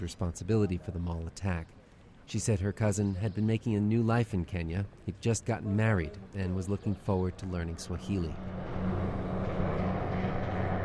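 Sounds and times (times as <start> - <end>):
speech: 0.0 - 8.6
police helicopters flying overhead: 6.2 - 10.8.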